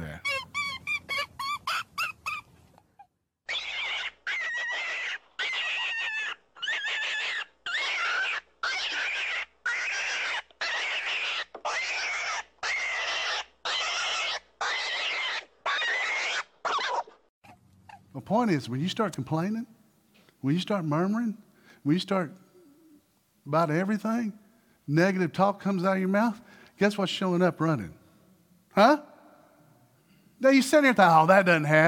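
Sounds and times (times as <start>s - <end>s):
rabbit distress call blown to lure coyotes: 0.0s - 2.5s, 3.5s - 17.2s
speech: 18.3s - 19.8s, 20.4s - 22.4s, 23.4s - 28.0s, 28.8s - 29.1s, 30.4s - 31.8s.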